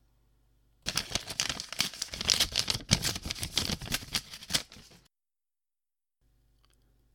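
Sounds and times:
letter paper crinkling and rustling as it is unfolded and handled: 0.9 - 5.1.

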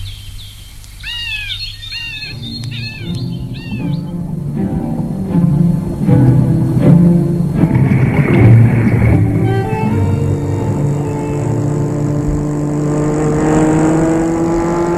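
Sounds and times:
car engine droning while cruising: 3.0 - 14.9.

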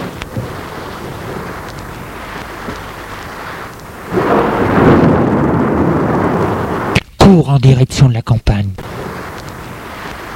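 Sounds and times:
low thunder rumbling: 0.0 - 7.0, 8.8 - 10.3
thunderstorm rain: 0.0 - 10.3
thunderstorm wind: 0.0 - 10.3
speech: 7.3 - 9.0.

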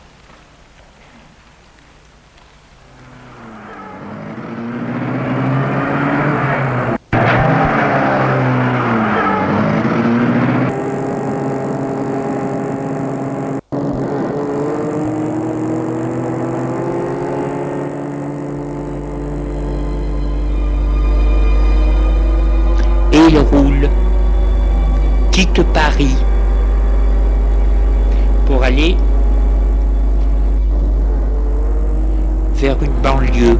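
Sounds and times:
car engine starting, running and revving: 2.8 - 33.5.

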